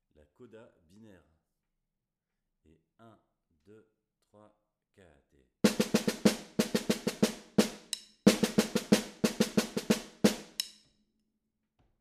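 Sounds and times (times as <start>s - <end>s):
batucada snare drum: 5.7s - 10.8s.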